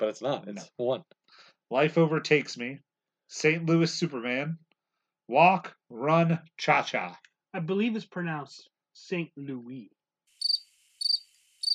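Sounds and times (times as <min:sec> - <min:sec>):
speech: 0:00.0 - 0:04.6, 0:05.3 - 0:10.0
crickets chirping in high-pitched pulsing trills: 0:10.4 - 0:11.7.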